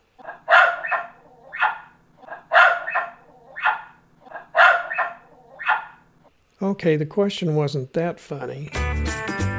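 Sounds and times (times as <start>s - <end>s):
dog barking: 0.2s - 6.0s
speech: 6.6s - 9.5s.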